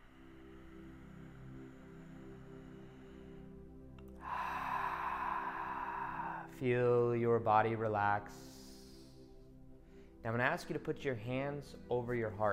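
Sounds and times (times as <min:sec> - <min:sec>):
slow deep breath in and out: 0:00.0 - 0:07.4, 0:08.2 - 0:10.3
speech: 0:06.6 - 0:08.6, 0:10.2 - 0:12.5.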